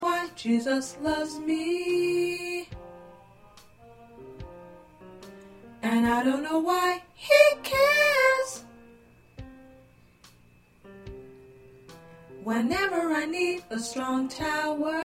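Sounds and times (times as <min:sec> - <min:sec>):
soprano singing: 0:00.0 - 0:08.8, 0:12.4 - 0:15.0.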